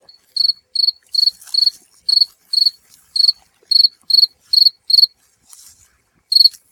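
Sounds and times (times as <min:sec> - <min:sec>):
Gryllus campestris field cricket chirping: 0:00.0 - 0:05.1, 0:06.3 - 0:06.6.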